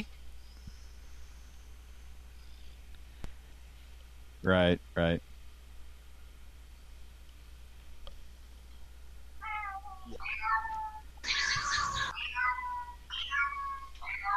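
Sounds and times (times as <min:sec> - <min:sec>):
speech: 0:04.4 - 0:05.3
cat meowing while being picked up: 0:09.4 - 0:14.3.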